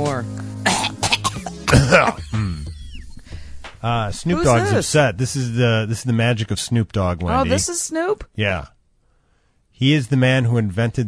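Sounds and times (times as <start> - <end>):
person clearing throat: 0.6 - 2.9
speech: 1.7 - 2.5, 3.8 - 8.8, 9.8 - 11.0.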